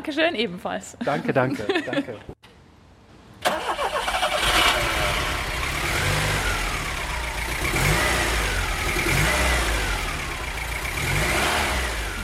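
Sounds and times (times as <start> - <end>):
speech: 0.0 - 2.4
laughter: 1.0 - 2.3
Peugeot 504 car starting and driving away: 3.4 - 12.2.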